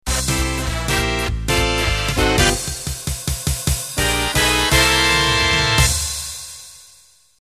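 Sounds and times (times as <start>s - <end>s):
quickstep dance music: 0.1s - 5.8s.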